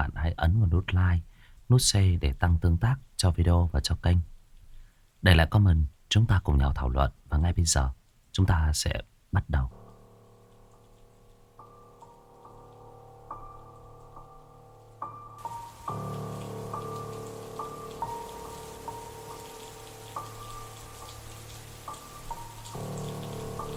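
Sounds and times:
speech: 0.4s - 4.3s, 5.2s - 9.8s
summer rain shower hissing: 9.6s - 23.7s.

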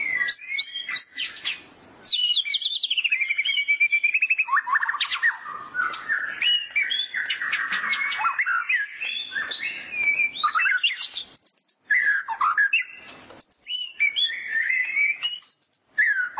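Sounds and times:
white-rumped shama singing fluty whistles trills and clicks: 0.0s - 16.3s.

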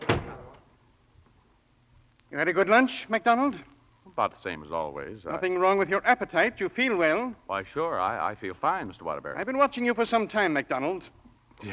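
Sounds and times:
door shutting with a firm thud: 0.0s - 0.6s
speech: 2.4s - 11.7s.

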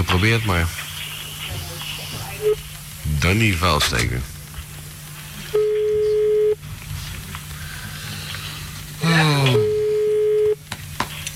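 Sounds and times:
speech: 0.1s - 0.8s, 2.4s - 4.3s
ringing tone of an outgoing telephone call: 5.6s - 6.6s, 9.5s - 10.6s.

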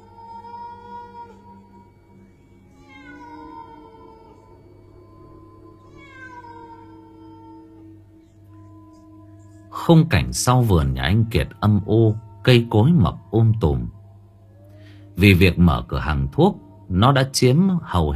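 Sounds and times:
steady low hum: 0.0s - 18.1s
cat meowing along a small path leading to a back garden: 2.7s - 4.5s, 5.8s - 7.9s
speech: 9.9s - 14.0s, 15.2s - 18.1s.

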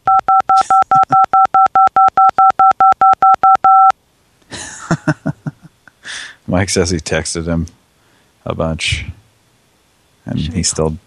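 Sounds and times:
telephone keypad dialing tones: 0.0s - 3.9s
laughter: 0.6s - 1.3s, 4.5s - 5.7s
speech: 6.6s - 7.8s, 8.5s - 9.2s, 10.6s - 11.0s.

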